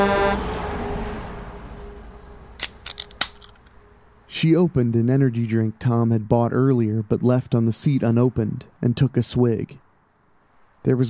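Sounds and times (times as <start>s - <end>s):
truck horn blaring on a highway: 0.0s - 0.6s
highway road noise: 0.0s - 4.3s
speech: 4.4s - 9.8s, 10.8s - 11.0s.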